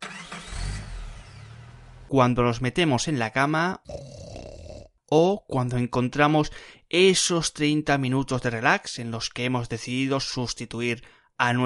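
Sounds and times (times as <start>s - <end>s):
car engine cranking and starting, then running: 0.0s - 2.1s
speech: 2.1s - 4.2s, 5.1s - 11.6s.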